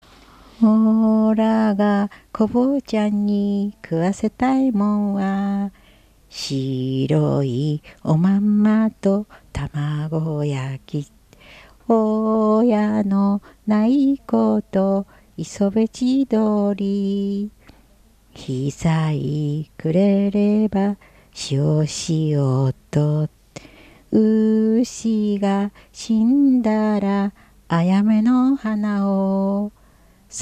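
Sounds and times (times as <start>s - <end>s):
Japanese folk-song lullaby: 0.2s - 29.8s.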